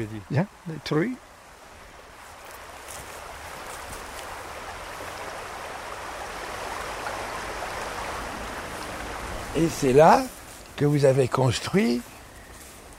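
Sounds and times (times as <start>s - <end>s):
speech: 0.0s - 1.3s, 9.6s - 12.1s
flowing river water rushing: 0.0s - 12.9s.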